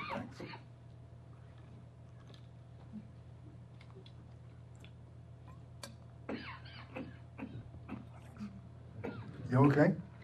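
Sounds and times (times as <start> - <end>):
person coughing: 0.0 - 0.7, 6.3 - 9.5
speech: 9.5 - 10.1.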